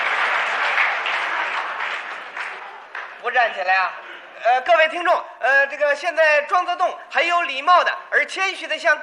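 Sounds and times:
standing audience applauding and cheering a player's victory at a match: 0.0s - 3.2s
speech: 3.3s - 9.0s.

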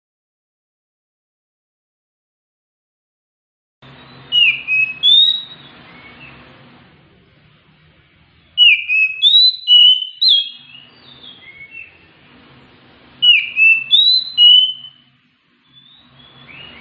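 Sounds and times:
faint low hum: 3.8s - 16.8s
Oriental magpie-robin song: 3.9s - 6.5s, 8.4s - 12.2s, 13.2s - 16.8s.

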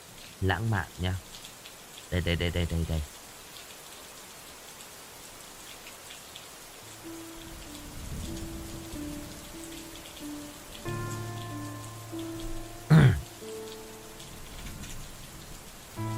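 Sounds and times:
heavy rain: 0.0s - 16.1s
speech: 0.4s - 1.3s, 2.1s - 3.2s
soft sustained music tones: 6.8s - 16.1s.

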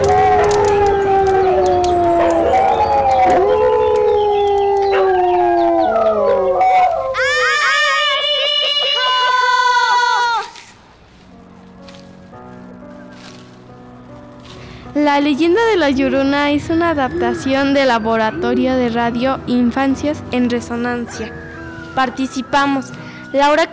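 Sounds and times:
neighbours' dogs howling and yelping: 0.0s - 10.6s, 14.5s - 22.3s
speech: 15.2s - 21.4s, 22.0s - 23.7s.

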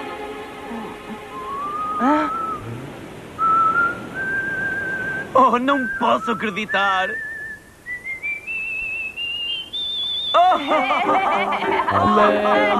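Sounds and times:
whistling attributed to a whistling fish in a circus act: 1.2s - 2.8s, 3.4s - 10.8s
speech: 5.6s - 7.3s, 10.6s - 12.7s
laughter: 10.4s - 12.7s.

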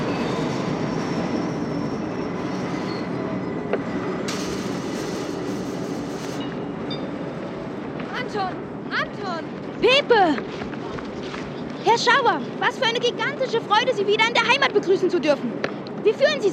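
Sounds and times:
Eurocity train wheels screeching: 0.0s - 7.5s
Eurocity train pulling into station with a rolling rumble: 0.0s - 16.5s
speech: 11.9s - 16.5s.

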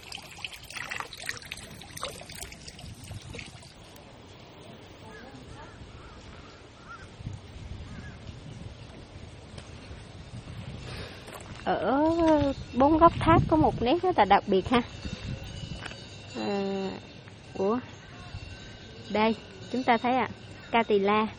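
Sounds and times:
water trickling from a mineral spring in a Korean Buddhist temple courtyard: 0.0s - 4.6s
crows cawing: 5.1s - 7.2s
speech: 11.7s - 15.0s, 19.2s - 21.3s.

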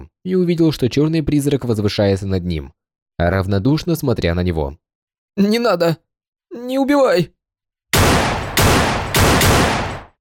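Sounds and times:
speech: 0.2s - 4.8s, 5.4s - 6.0s, 6.6s - 7.4s
gunshots: 8.0s - 10.1s.

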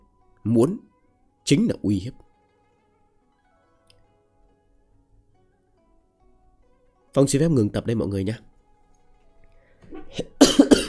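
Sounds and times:
speech: 0.4s - 0.9s, 1.5s - 2.2s, 7.2s - 8.5s, 10.1s - 10.3s
person coughing: 9.8s - 10.8s.

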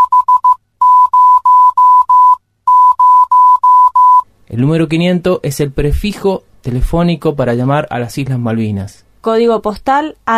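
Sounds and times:
number 500 beeped in Morse code as a steady mid-pitched tone: 0.0s - 4.2s
speech: 4.6s - 10.3s.

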